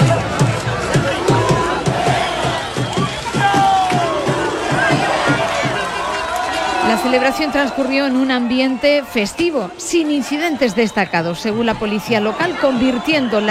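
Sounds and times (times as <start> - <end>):
large crowd of fans cheering in the streets of Motril: 0.0 - 13.4
whistles: 2.1 - 4.1, 10.5 - 11.8
speech: 7.0 - 13.4.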